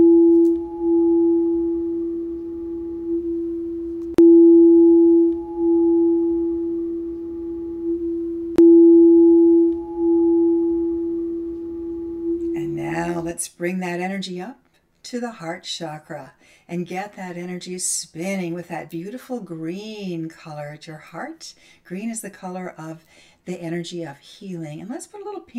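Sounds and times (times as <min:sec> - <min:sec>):
meditation tone ringing: 0:00.0 - 0:13.3
speech: 0:13.4 - 0:25.5.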